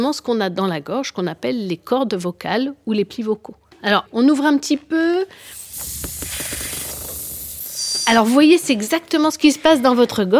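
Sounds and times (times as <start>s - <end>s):
speech: 0.0s - 6.6s, 8.0s - 10.3s
air hissing out through a narrow slit: 5.3s - 8.5s.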